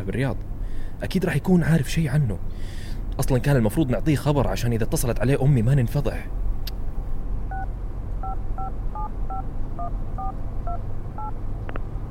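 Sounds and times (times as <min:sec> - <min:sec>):
speech: 0:00.0 - 0:06.5, 0:09.0 - 0:11.6
phone keypad dialing tones: 0:07.5 - 0:11.3.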